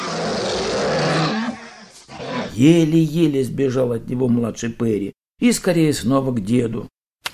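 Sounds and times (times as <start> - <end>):
bear roaring in anger: 0.0 - 2.6
speech: 2.6 - 7.0.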